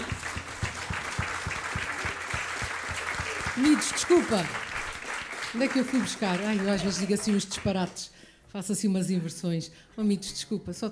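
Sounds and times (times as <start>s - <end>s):
rhythmic thump of part of the crowd clapping in time: 0.0s - 7.8s
audience applauding: 0.0s - 8.0s
speech: 3.6s - 4.6s, 5.5s - 10.9s.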